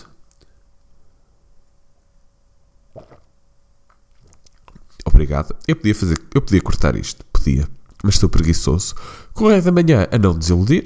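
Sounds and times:
person sipping water: 2.9 - 5.1
wet swallowing: 2.9 - 5.2
speech: 5.2 - 10.8.

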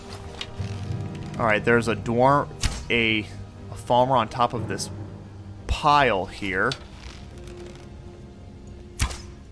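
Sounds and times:
speech: 1.4 - 5.0, 5.8 - 6.9
video game bow firing an arrow: 2.6 - 2.9, 9.0 - 9.4.

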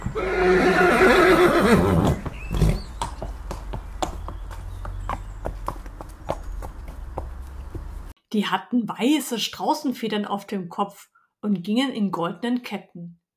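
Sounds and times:
horse whinnying: 0.0 - 2.9
horse hooves clip-clopping: 1.5 - 8.1
speech: 1.6 - 2.0, 8.4 - 13.2.

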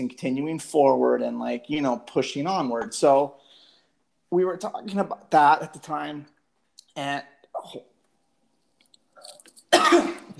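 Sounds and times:
speech: 0.0 - 3.4, 4.3 - 6.3, 7.0 - 7.9
person coughing after getting choked up mid-sentence: 9.7 - 10.3.

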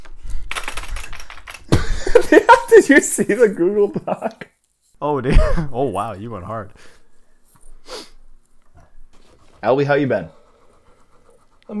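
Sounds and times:
computer keyboard typing into a document: 0.3 - 1.7
speech: 2.9 - 7.0, 9.6 - 10.4.

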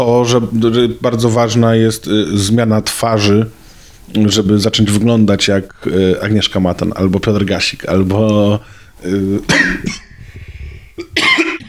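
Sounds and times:
speech: 0.0 - 10.1, 11.0 - 11.4
man coughing harshly: 9.4 - 10.2, 11.0 - 11.6.

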